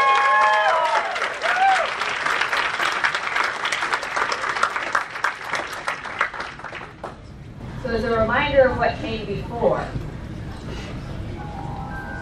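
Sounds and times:
audience applause: 0.0 - 7.1
speech: 8.6 - 10.0.

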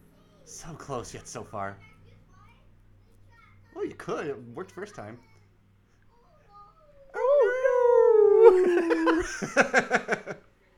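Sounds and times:
speech: 0.5 - 1.9, 3.8 - 5.3, 8.6 - 10.5
poodle howling: 7.2 - 9.3
laughter: 7.2 - 10.4.

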